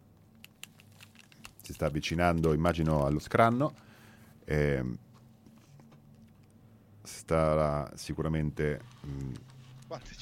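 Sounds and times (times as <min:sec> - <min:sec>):
papers being shuffled by a university rector at an academic event: 0:00.6 - 0:03.9, 0:08.7 - 0:10.2
speech: 0:01.7 - 0:03.9, 0:04.5 - 0:05.0, 0:07.3 - 0:10.2.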